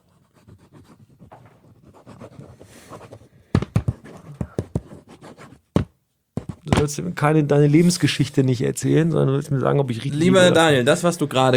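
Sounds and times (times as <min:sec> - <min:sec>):
pen scratching across paper while writing: 0:00.0 - 0:05.7, 0:06.4 - 0:06.7
pen strokes and taps: 0:03.6 - 0:05.0
speech: 0:06.8 - 0:11.5.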